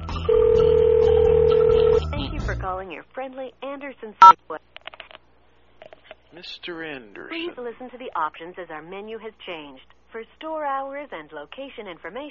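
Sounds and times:
telephone ringback tone as a call is placed: 0:00.3 - 0:02.1
speech: 0:03.2 - 0:04.8, 0:06.3 - 0:12.3.

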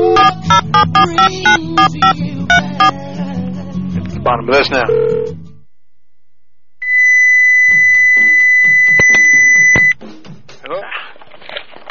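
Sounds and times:
loud electronic beep on a conference phone line: 0:00.1 - 0:02.9, 0:06.9 - 0:10.0
speech: 0:00.8 - 0:03.0, 0:04.3 - 0:05.3.

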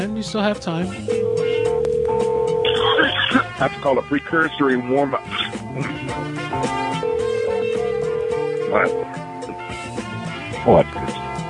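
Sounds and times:
speech: 0:00.0 - 0:01.5, 0:03.0 - 0:07.0, 0:08.7 - 0:09.2, 0:10.6 - 0:10.8
busy music: 0:00.0 - 0:11.4
telephone ringing tone on the line: 0:01.0 - 0:03.2, 0:06.5 - 0:09.3.

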